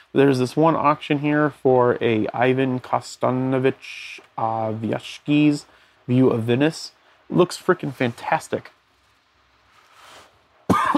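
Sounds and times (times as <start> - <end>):
speech: 0.1 - 8.8
quiet breathy rustle: 8.9 - 10.7
rough throaty cough: 10.7 - 10.9.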